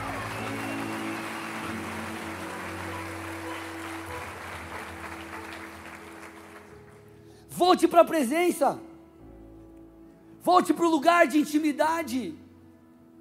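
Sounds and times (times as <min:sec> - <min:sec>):
large congregation applauding: 0:00.0 - 0:07.2
speech: 0:07.6 - 0:08.9, 0:10.5 - 0:12.4.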